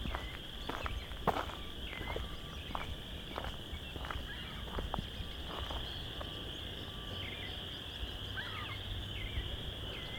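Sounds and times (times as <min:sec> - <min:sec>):
chorus of chorus frogs trilling in a marsh: 0:00.0 - 0:10.1.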